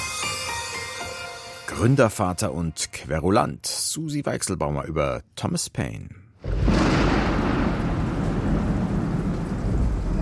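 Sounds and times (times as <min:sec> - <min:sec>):
speech: 0:01.7 - 0:06.8
deep booming thunder at sea around a sailing ship: 0:06.4 - 0:10.1
heavy ice-cold rain lashing the deck of a sailing ship: 0:06.5 - 0:10.1.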